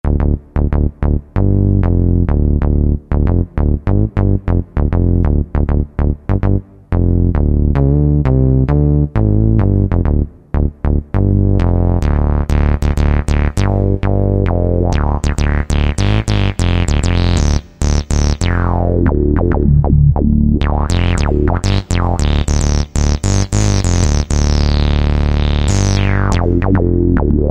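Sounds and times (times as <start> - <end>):
HiQ Bass tone on a Yamaha YPT-400 keyboard: 0.0 - 27.5.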